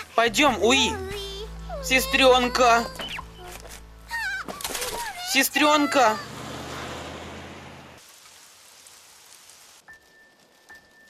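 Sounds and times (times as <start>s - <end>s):
heavy rain pouring: 0.0s - 10.6s
speech: 0.2s - 1.1s, 1.8s - 3.0s, 5.3s - 6.3s
faint high tone: 0.3s - 6.1s.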